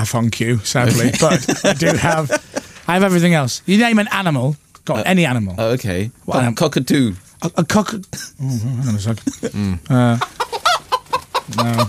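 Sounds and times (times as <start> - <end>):
speech: 0.0 - 10.5, 11.5 - 11.8
laughter: 0.8 - 3.2, 8.4 - 10.3
chicken clucking: 9.4 - 11.8.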